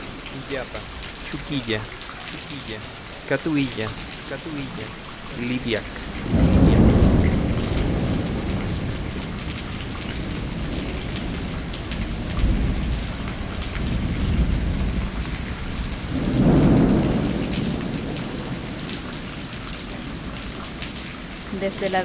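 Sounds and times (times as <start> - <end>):
heavy rain: 0.0 - 22.0
speech: 0.4 - 6.4, 21.7 - 22.0
deep rolls of thunder: 6.0 - 21.4.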